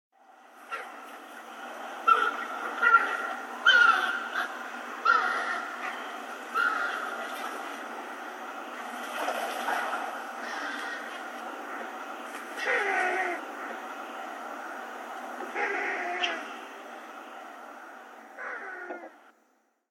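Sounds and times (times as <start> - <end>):
Black-faced Spoonbill ground calls in Tomigusuku Okinawa: 2.0 - 7.9, 9.6 - 13.8, 15.5 - 16.6.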